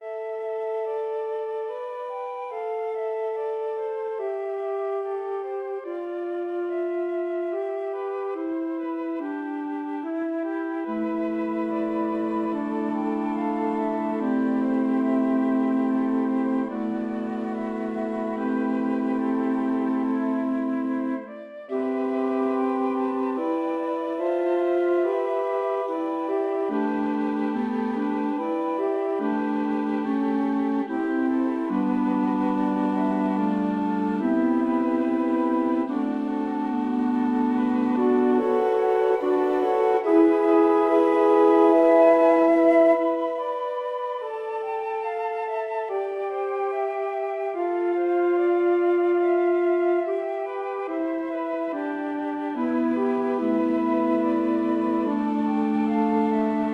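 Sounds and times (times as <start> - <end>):
flute choir: 0.0 - 56.7.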